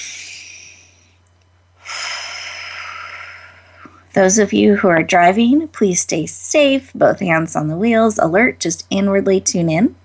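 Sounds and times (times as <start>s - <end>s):
deep belly breath: 0.0s - 1.2s, 1.8s - 4.1s
speech: 4.2s - 10.0s.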